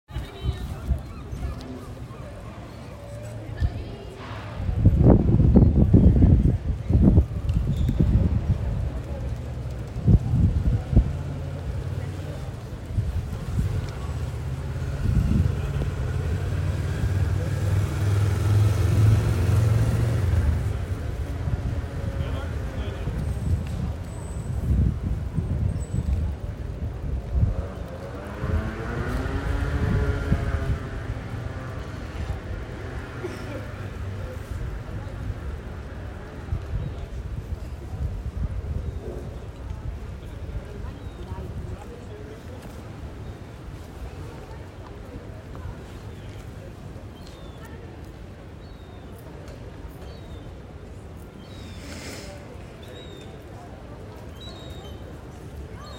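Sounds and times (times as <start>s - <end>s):
wind in Rotterdam street: 0.0s - 55.9s
street ambience in Rotterdam: 0.1s - 55.9s.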